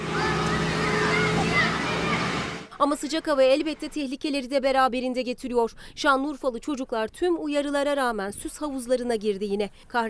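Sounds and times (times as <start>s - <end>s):
water sprayed from municipal vehicles onto children: 0.0s - 2.7s
speech: 2.8s - 10.0s.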